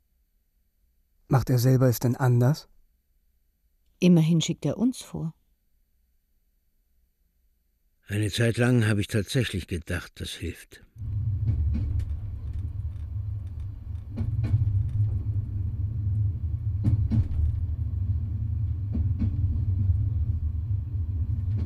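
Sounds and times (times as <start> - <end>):
speech: 1.3 - 2.8, 4.0 - 5.4, 8.1 - 11.6
TGV high-speed train travelling at night: 11.0 - 21.6
faint clicks and knocks from the train track: 11.0 - 21.6.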